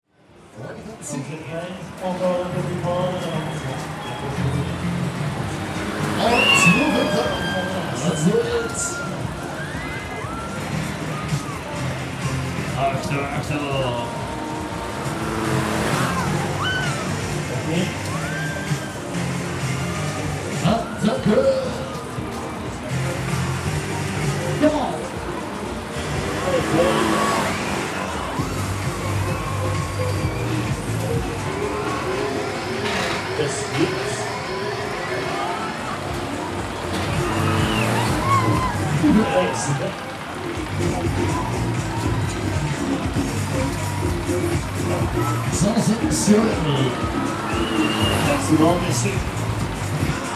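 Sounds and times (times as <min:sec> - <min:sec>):
funfair: 0:00.1 - 0:50.3.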